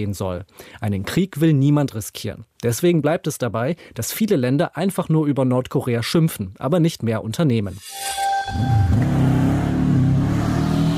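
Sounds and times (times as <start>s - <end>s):
speech: 0.0s - 9.4s
motorcycle engine revving: 8.9s - 10.9s.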